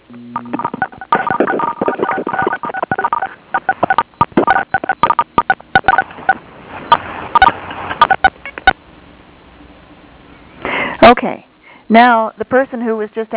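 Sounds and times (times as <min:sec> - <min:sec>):
speech: 0:00.1 - 0:01.6, 0:11.9 - 0:13.3
phone keypad tones from several people pressing star six: 0:00.4 - 0:06.1, 0:07.4 - 0:08.8.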